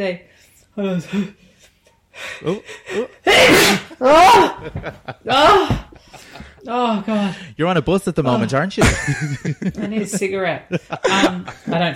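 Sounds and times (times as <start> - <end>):
speech: 0.0 - 1.5, 2.2 - 11.9
gasping and vocal sounds: 0.8 - 3.3, 5.3 - 7.6
person sneezing: 3.2 - 4.6
laughter: 4.3 - 6.6, 8.8 - 11.9.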